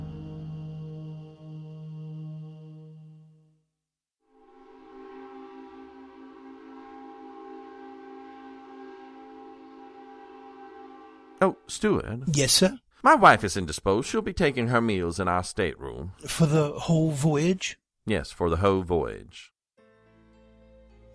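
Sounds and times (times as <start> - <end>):
boat train whistle blowing: 4.7 - 11.4
speech: 11.4 - 19.5.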